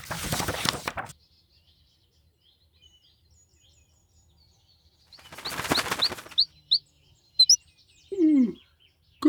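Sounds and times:
wings fluttering: 0.0s - 1.1s, 5.1s - 6.8s
small golden songbird chirping in a window: 0.0s - 9.2s.

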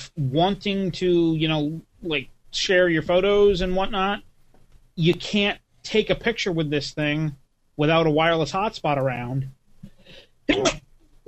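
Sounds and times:
speech: 0.2s - 4.3s, 5.0s - 11.2s
faint breathing: 9.8s - 10.5s
person sneezing: 10.5s - 11.2s.

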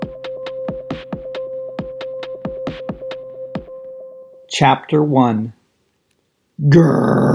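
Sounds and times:
speech: 4.5s - 5.6s, 6.6s - 7.3s
voice imitating fire roaring out of hot air balloon steel burners: 6.6s - 7.3s.

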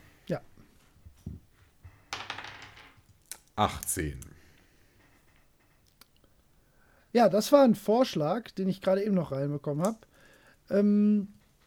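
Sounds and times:
speech: 0.3s - 0.5s, 3.6s - 4.3s, 7.1s - 10.1s, 10.7s - 11.4s
dice tumbling and rattling across a surface: 1.9s - 3.5s.

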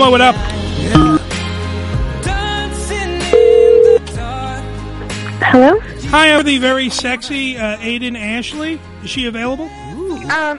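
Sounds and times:
speech: 0.0s - 1.2s, 5.5s - 10.5s
music playing: 0.0s - 10.5s
short electronic tone of a phone line connecting: 1.0s - 1.2s
telephone ringback beep: 1.0s - 1.2s, 3.3s - 4.0s.

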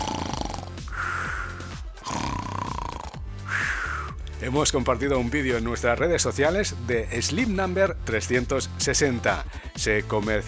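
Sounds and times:
loud rasping throaty snoring: 0.0s - 4.2s
speech: 4.4s - 10.4s.

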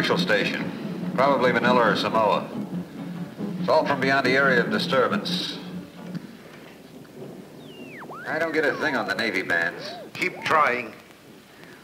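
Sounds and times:
speech: 0.0s - 2.6s, 3.7s - 5.6s, 8.3s - 11.0s
wind in a thunderstorm: 0.0s - 11.8s
thunderstorm rumbling: 7.0s - 11.8s.

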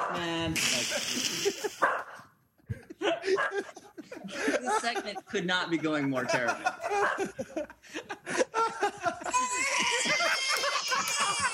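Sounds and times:
speech: 0.1s - 2.1s, 4.7s - 8.0s
laughter: 0.6s - 1.9s, 2.5s - 11.5s
dog barking and yipping: 1.8s - 2.3s, 3.4s - 3.7s, 6.9s - 7.3s.

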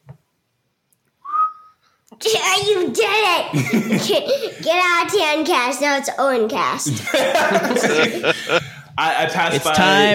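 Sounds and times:
person whistling one steady note: 1.2s - 1.8s
speech: 2.1s - 10.1s
laughter: 3.5s - 4.8s, 6.9s - 9.6s.

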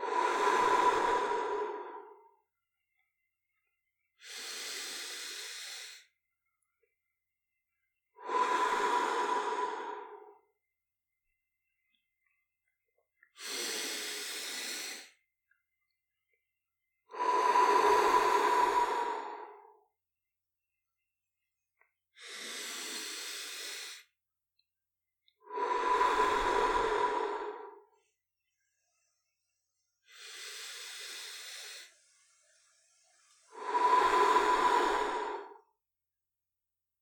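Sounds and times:
slow deep breathing in and out during a guided meditation: 0.0s - 2.4s, 4.2s - 6.1s, 8.2s - 10.5s, 13.4s - 15.2s, 17.1s - 19.8s, 22.2s - 24.1s, 25.4s - 35.7s.

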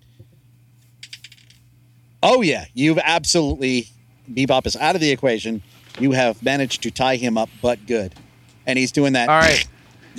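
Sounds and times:
twenty-sided die rolling on a hard tabletop: 1.0s - 1.6s
speech: 2.2s - 10.1s.

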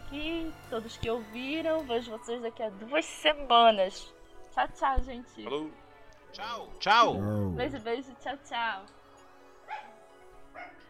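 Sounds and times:
speech: 0.1s - 9.0s
dog barking: 9.6s - 10.8s.

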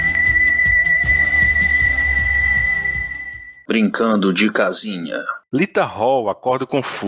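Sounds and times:
whistle blown in one long steady shrill note: 0.0s - 3.7s
speech: 3.7s - 7.0s.

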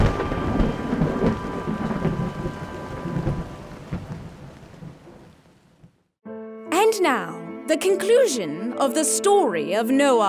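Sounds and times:
deep rolling thunder rumbles: 0.0s - 5.5s
steady falling rain: 0.0s - 6.1s
speech: 7.0s - 10.2s.

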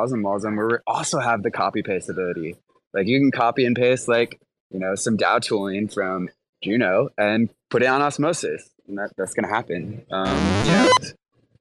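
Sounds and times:
speech: 0.0s - 11.2s
fart-like thumbs-up sound effect: 10.2s - 11.1s.

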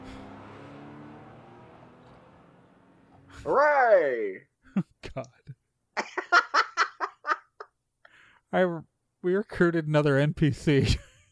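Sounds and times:
car engine revving in a video game: 0.0s - 3.5s
speech: 3.4s - 5.5s, 8.5s - 11.1s
laughter: 4.7s - 7.7s, 10.8s - 11.3s.

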